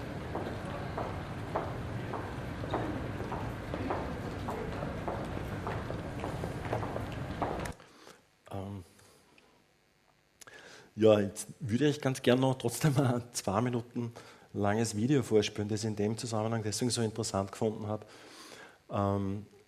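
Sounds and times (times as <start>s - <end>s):
busy outdoor murmur: 0.0s - 7.8s
person's footsteps in a large car-free pedestrian zone: 0.0s - 7.8s
speech: 11.0s - 18.3s, 18.9s - 19.6s.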